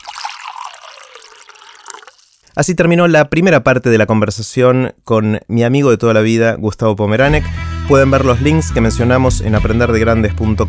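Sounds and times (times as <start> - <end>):
water pouring into a glass: 0.0 - 2.6
speech: 2.6 - 10.6.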